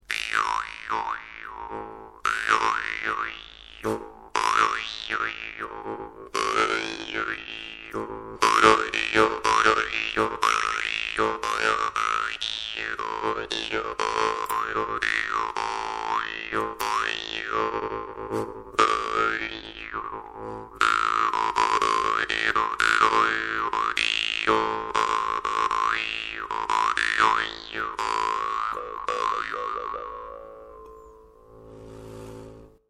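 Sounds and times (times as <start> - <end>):
low bass parmupill bagpipe drone: 0.1 - 32.8.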